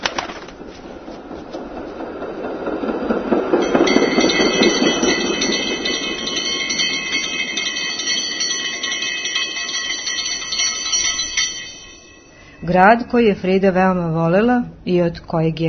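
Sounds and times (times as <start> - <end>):
tram rumbling along rails: 0.0 - 15.1
tram bell ringing: 2.8 - 13.4
speech: 12.7 - 15.6.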